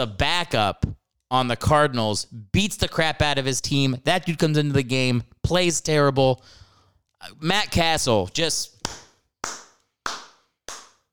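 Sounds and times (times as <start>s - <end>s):
speech: 0.0s - 6.6s, 7.2s - 9.6s
slow hand claps from a single person: 8.8s - 11.1s.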